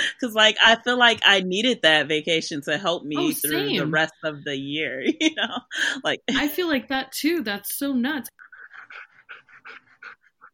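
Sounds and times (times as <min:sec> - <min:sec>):
speech: 0:00.1 - 0:09.0
dog panting heavily in quick rhythmic breaths: 0:08.4 - 0:10.5.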